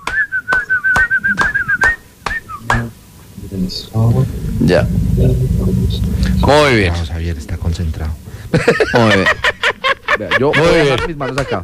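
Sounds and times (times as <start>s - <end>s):
person whistling a quick warbling tune: 0.0s - 2.8s
hands clapping in a steady beat: 0.0s - 2.9s, 11.0s - 11.5s
speech: 3.5s - 9.5s, 10.2s - 11.6s
laughter: 8.5s - 11.6s.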